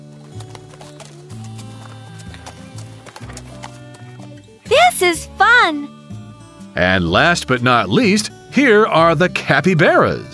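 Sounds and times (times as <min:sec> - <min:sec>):
horse hooves clip-clopping while riding: 0:00.0 - 0:04.4
speech: 0:05.0 - 0:05.9, 0:06.8 - 0:10.3.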